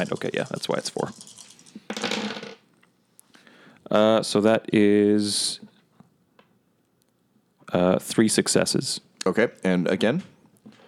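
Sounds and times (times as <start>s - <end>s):
speech: 0.0s - 2.3s, 3.9s - 5.7s, 7.7s - 10.3s
four dice rolling on a hard surface: 0.0s - 2.6s.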